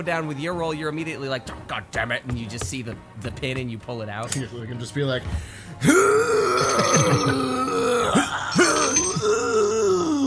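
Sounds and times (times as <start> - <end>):
speech: 0.0 - 8.8
voice imitating straining groans and grunts against the wind: 5.8 - 10.2.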